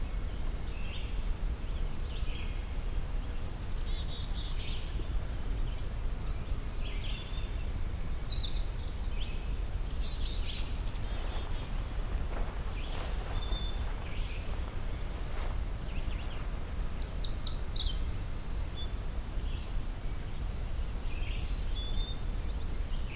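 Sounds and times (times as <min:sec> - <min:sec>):
Magnolia warbler singing: 0:00.2 - 0:23.1
faint chirps: 0:09.8 - 0:18.8.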